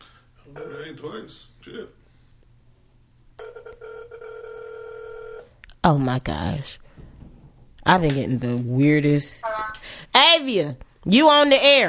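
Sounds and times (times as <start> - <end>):
speech: 0.5 - 2.0, 5.8 - 6.8, 7.8 - 11.8
phone line ringback tone: 3.4 - 5.5.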